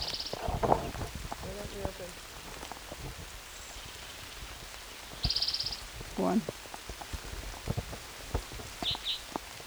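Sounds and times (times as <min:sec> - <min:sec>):
rain falling at a creek site in June: 0:00.0 - 0:09.6
speech: 0:06.3 - 0:06.5.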